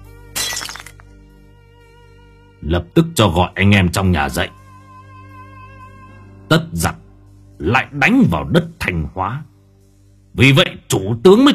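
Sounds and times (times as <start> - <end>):
bowl of vối tea shattering in a clenched hand: 0.3 - 1.1
bowl fragments clinking: 0.4 - 1.1
speech: 2.6 - 4.6, 6.5 - 7.0, 7.6 - 9.5, 10.4 - 11.5.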